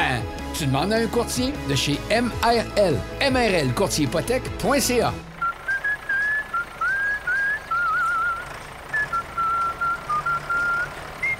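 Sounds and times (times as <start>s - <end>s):
speech: 0.6s - 5.3s
person whistling a bright bouncy melody: 5.4s - 11.3s.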